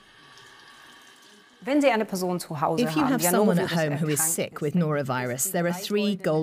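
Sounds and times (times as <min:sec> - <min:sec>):
tap water running over hands being washed: 0:00.0 - 0:04.0
speech: 0:01.6 - 0:06.4.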